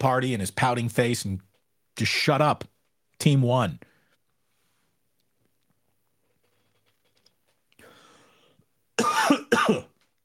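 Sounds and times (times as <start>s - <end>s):
speech: 0.0s - 3.9s, 9.6s - 9.9s
person coughing: 9.0s - 10.0s.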